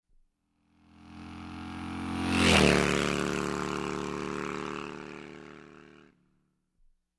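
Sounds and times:
cruiser motorcycle passing by: 0:00.7 - 0:06.2.

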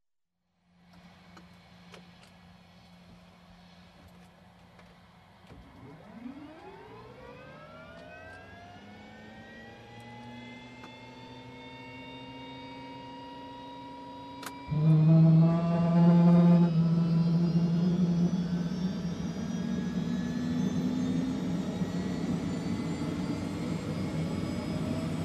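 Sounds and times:
helicopter engine starting heard from cockpit: 0:05.5 - 0:25.2.

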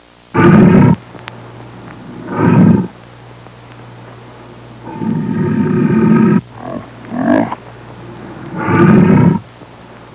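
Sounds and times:
leopard snarl in a jungle: 0:00.4 - 0:01.0, 0:02.0 - 0:02.9, 0:04.8 - 0:07.6, 0:08.2 - 0:09.5.

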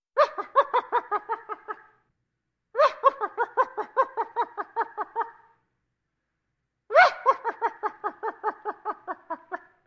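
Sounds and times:
funny evil laugh: 0:00.2 - 0:02.0, 0:02.8 - 0:05.6, 0:06.9 - 0:09.8.

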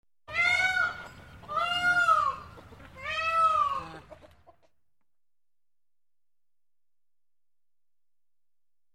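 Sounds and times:
fowl crying: 0:00.3 - 0:04.3.

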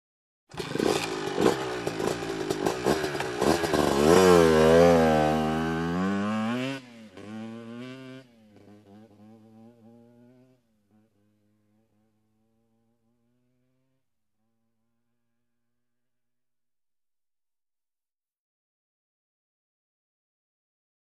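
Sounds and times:
motorbike driving away: 0:00.5 - 0:15.3.

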